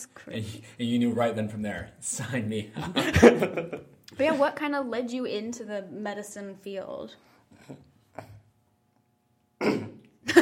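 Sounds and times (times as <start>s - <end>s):
speech: 0.0s - 8.3s
laughter: 2.8s - 4.0s
person coughing with something stuck in the throat: 9.6s - 10.4s.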